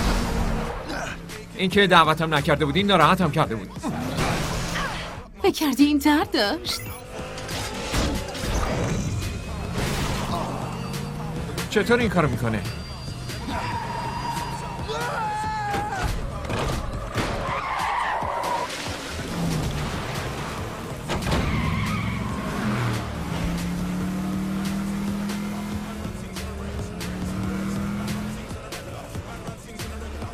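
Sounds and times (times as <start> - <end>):
video game car engine: 0.0 - 5.2, 7.0 - 30.3
speech: 1.6 - 4.0, 5.4 - 7.0, 11.7 - 12.8
video game car tyres squealing in a skid: 7.0 - 23.2.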